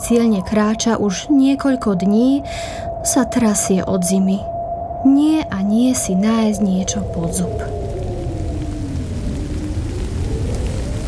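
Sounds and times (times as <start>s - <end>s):
speech: 0.1s - 7.9s
rain falling in a dense hiss with a low rumbling undertone: 6.0s - 11.0s.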